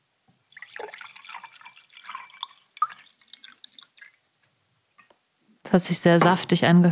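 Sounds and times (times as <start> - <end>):
water poured into a glass: 0.4 - 4.2
speech: 5.7 - 6.9.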